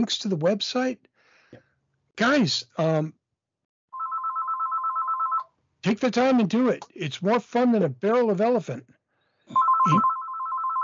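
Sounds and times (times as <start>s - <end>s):
speech: 0.0s - 1.6s, 2.2s - 3.2s, 5.8s - 9.0s, 9.8s - 10.1s
house telephone ringing in British Columbia: 3.9s - 5.5s, 9.5s - 10.8s.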